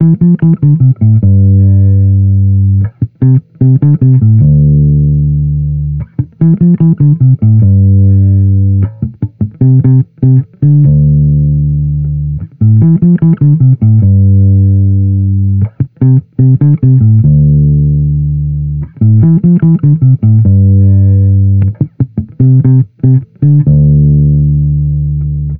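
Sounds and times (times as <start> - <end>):
amped electric bass loop in D minor: 0.0 - 25.5.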